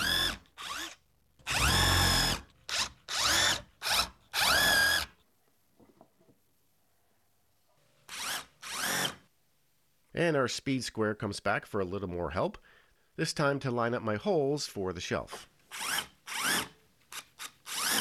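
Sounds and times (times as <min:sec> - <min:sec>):
power drill with countersinking bit whirring: 0:00.0 - 0:05.1, 0:08.1 - 0:09.2, 0:15.7 - 0:18.0
speech: 0:10.2 - 0:15.5.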